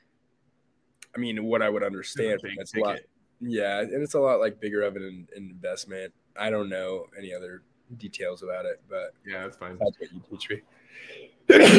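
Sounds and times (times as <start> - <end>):
speech: 1.2 - 11.7
faint intake of breath: 10.7 - 11.4
loud sneeze: 11.5 - 11.7.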